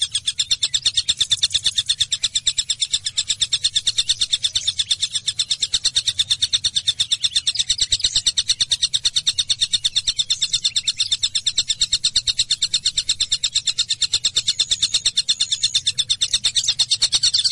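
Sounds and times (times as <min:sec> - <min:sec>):
Java sparrow song of sharp high chirps: 0:00.0 - 0:17.4.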